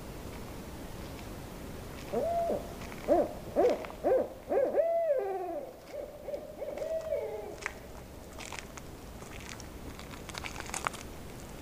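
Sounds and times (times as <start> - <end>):
owl hooting: 2.0 - 7.7.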